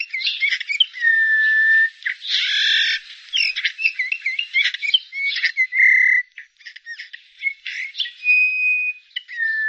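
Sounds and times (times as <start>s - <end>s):
Eurasian bullfinch calls: 0.0s - 9.6s.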